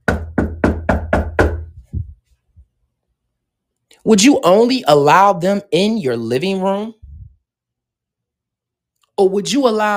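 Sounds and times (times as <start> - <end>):
knocking on a door: 0.0 - 2.2
speech: 4.0 - 7.0, 9.2 - 9.9.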